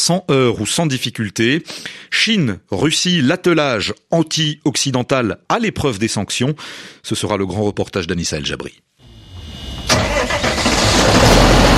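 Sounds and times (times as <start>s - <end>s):
speech: 0.0s - 8.9s
tractor engine starting and running outdoors in an industrial area: 9.3s - 11.7s.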